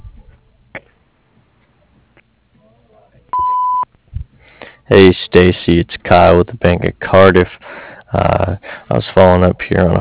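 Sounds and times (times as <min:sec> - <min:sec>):
low noise: 0:00.0 - 0:10.0
single steady electronic beep: 0:03.4 - 0:03.9
speech: 0:04.9 - 0:10.0.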